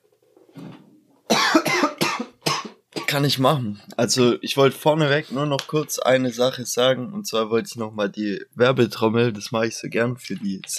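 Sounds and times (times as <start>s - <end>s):
person coughing harshly: 1.3s - 3.2s
speech: 3.1s - 10.7s.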